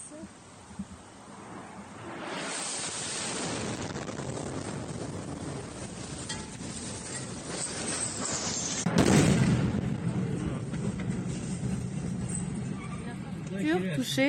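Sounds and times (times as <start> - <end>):
noise: 0.0 - 14.2
loud explosive blast with lingering low rumble: 1.2 - 12.6
speech: 13.7 - 14.2.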